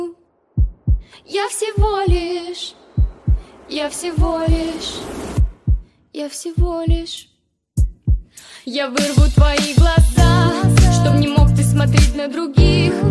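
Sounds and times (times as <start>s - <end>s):
deep steady heartbeat in lub-dub pairs: 0.6s - 1.2s, 1.8s - 5.9s, 6.6s - 7.2s, 7.8s - 8.3s
speech: 1.2s - 2.8s, 3.7s - 5.3s, 6.2s - 7.3s, 8.6s - 10.2s, 11.0s - 13.0s.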